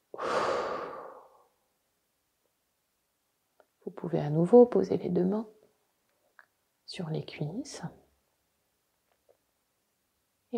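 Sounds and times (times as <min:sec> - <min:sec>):
long breath blown out during a relaxation exercise: 0:00.1 - 0:01.5
speech: 0:03.9 - 0:05.6, 0:06.9 - 0:08.0.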